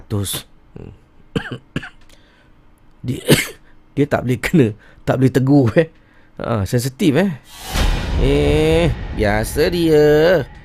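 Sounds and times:
speech: 0.1 - 2.0, 3.0 - 10.6
person coughing: 1.3 - 2.0, 3.2 - 3.6.

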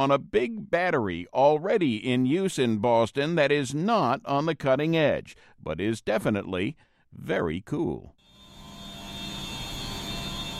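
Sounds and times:
speech: 0.0 - 8.2
high-pitched hum of pumps and boilers in a federal courthouse basement in Boston: 8.3 - 10.5.

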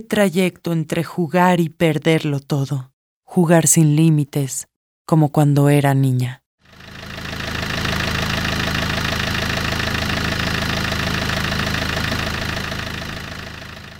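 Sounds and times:
speech: 0.0 - 6.9
car engine idling with the handbrake on: 6.7 - 13.9
car exhaust pipe releasing gases: 6.7 - 13.9.

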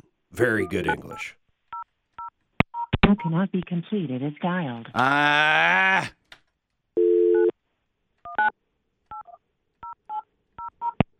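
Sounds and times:
speech: 0.4 - 1.4, 3.1 - 6.2
steady telephone dial tone: 7.0 - 7.5.

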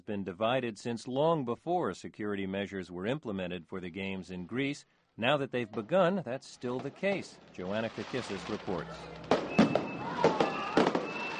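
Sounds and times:
speech: 0.0 - 9.3
fireworks exploding at night over a Greek port town during a street celebration: 6.7 - 11.3
thin steady whistle-like tone: 9.6 - 11.3.

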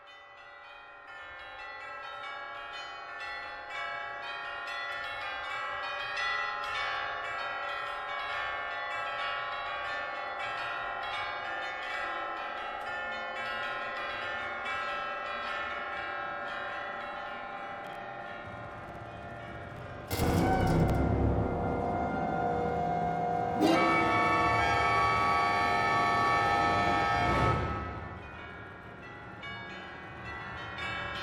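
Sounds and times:
orchestral tuned bells ringing: 0.0 - 31.2.

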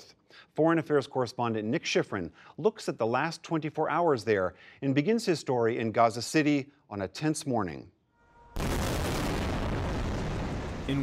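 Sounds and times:
speech: 0.6 - 8.0, 10.9 - 11.0
airstrike explosion hitting a building on a busy city street: 8.6 - 11.0.

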